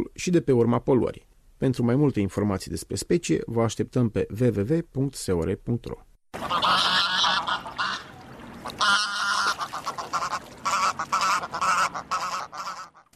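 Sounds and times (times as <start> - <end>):
speech: 0.0 - 7.4
greylag goose honking: 6.4 - 13.1.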